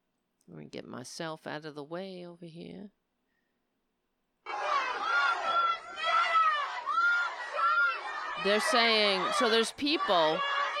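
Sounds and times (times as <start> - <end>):
speech: 0.5 - 3.0, 8.4 - 10.6
crowd chanting: 4.5 - 10.7.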